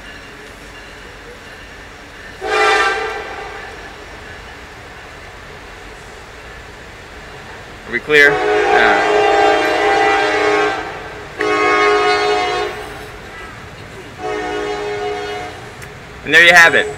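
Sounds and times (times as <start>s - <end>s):
passing train whistle blasts: 2.4s - 3.8s, 8.2s - 13.1s, 14.2s - 15.7s
speech: 7.9s - 9.0s, 16.3s - 16.9s.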